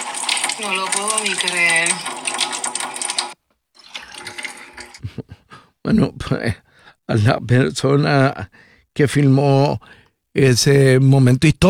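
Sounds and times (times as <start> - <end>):
water gushing from a pipe: 0.0 - 5.0
speech: 0.6 - 2.5, 5.9 - 11.6.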